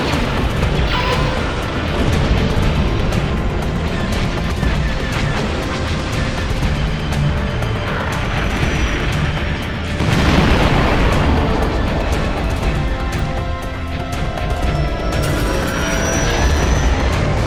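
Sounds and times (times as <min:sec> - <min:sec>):
rumble of explosions and booming blasts from a bombardment: 0:00.0 - 0:17.4.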